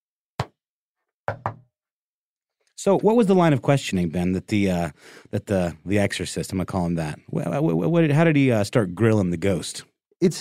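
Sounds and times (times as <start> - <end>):
speech: 1.3 - 1.5, 2.8 - 10.3
sharp knocks on a hard surface: 1.3 - 1.6.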